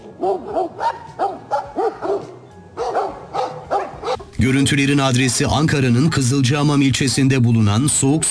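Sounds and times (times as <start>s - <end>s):
stray dogs barking and yipping while fighting bears in a national park: 0.0s - 4.4s
speech: 0.2s - 0.8s, 4.4s - 8.2s.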